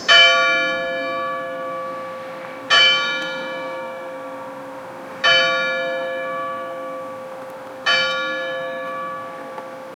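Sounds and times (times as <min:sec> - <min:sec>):
church bells playing a chime: 0:00.0 - 0:09.9.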